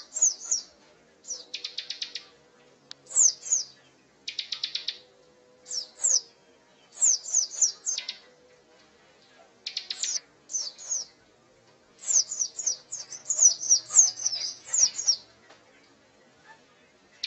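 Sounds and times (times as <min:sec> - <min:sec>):
prinia singing energetically: 0:00.0 - 0:08.4, 0:09.6 - 0:11.2, 0:12.0 - 0:15.4.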